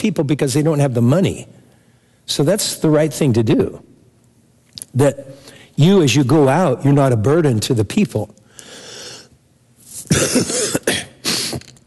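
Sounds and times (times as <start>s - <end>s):
speech: 0.0s - 1.6s, 2.3s - 3.9s, 4.9s - 8.8s
faint noise: 0.0s - 11.8s
harsh rasping coughing fit: 10.0s - 11.7s
throat-clearing rumble: 10.1s - 11.8s.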